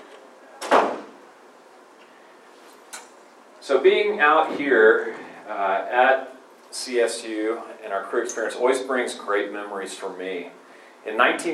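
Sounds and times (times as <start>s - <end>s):
low hum of room noise: 0.0s - 11.5s
front door swinging shut: 0.6s - 1.2s
speech: 3.6s - 11.5s.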